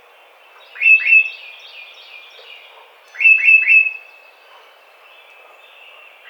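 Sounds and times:
tufted titmouse giving clear whistled song phrases: 0.7s - 1.4s, 3.2s - 4.0s.

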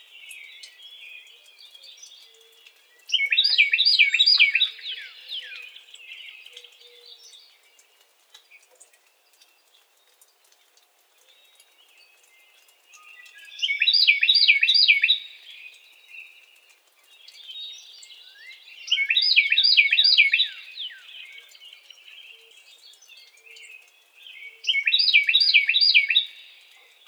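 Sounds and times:
Carolina wren song: 3.1s - 7.1s, 12.2s - 16.5s, 17.1s - 27.0s.

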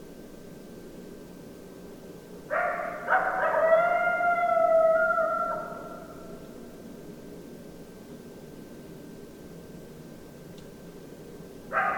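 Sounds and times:
several coyotes howling: 2.5s - 6.5s, 11.7s - 11.9s.

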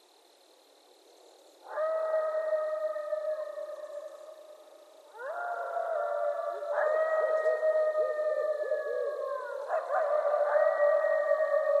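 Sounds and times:
coyote howling: 1.7s - 4.5s, 5.1s - 11.7s.

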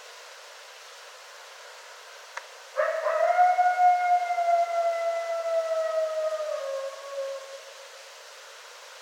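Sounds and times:
coyote howl: 2.8s - 7.7s.

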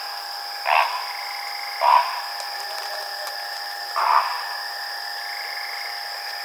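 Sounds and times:
Great Blue Heron calling: 0.7s - 4.4s.

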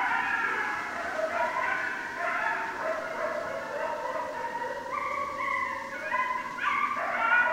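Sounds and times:
group of coyotes yipping and howling together: 0.0s - 7.5s.

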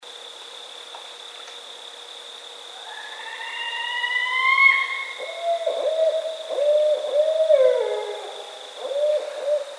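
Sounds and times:
Barred owl hooting: 2.9s - 9.7s.

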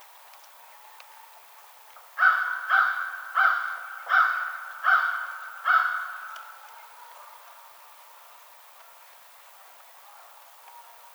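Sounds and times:
American crow giving raspy caws: 2.2s - 6.6s.

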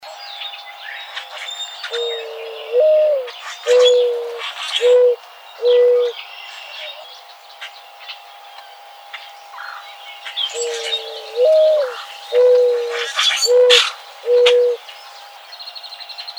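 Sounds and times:
small birds chirping: 0.0s - 16.3s
mourning dove cooing: 1.2s - 6.3s, 10.3s - 15.0s
speech: 1.9s - 2.9s.

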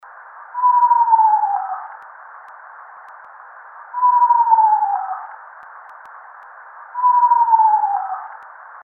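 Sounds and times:
Eastern Screech Owl: 0.5s - 2.0s, 3.9s - 5.4s, 6.9s - 8.5s.

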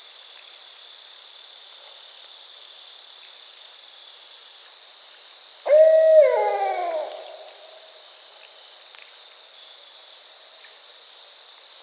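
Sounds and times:
barred owl hooting: 5.7s - 7.8s.

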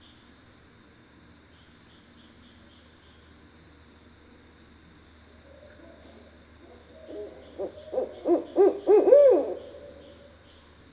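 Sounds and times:
barred owl hooting: 7.0s - 10.4s.

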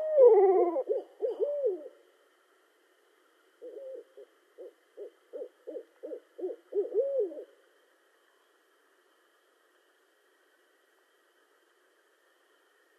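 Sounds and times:
barred owl hooting: 0.0s - 2.0s, 3.6s - 7.5s.

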